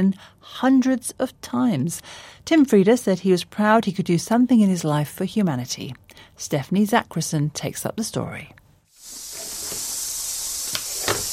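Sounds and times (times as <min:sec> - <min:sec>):
speech: 0:00.0 - 0:08.6
steady breathy snake hiss: 0:08.9 - 0:11.3.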